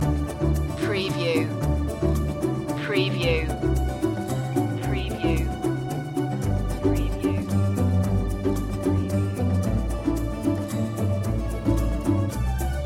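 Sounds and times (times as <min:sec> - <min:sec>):
French opera music loop: 0:00.2 - 0:12.1.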